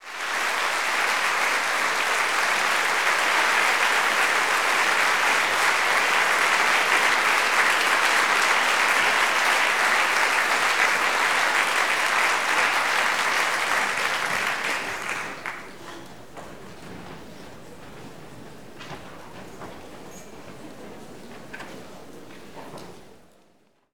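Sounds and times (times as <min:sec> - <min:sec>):
applause: 0:00.0 - 0:16.2.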